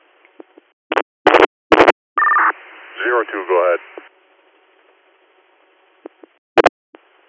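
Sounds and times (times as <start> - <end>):
crackly radio dispatch bursts: 0.9 - 3.0
dispatch alert tone over a radio channel: 2.2 - 2.5
speech: 3.0 - 4.0.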